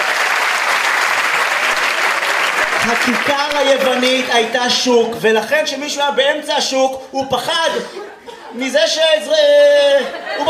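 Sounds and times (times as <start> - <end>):
audience applause: 0.0 - 4.6
speech: 2.9 - 10.4
laughter: 7.4 - 10.4.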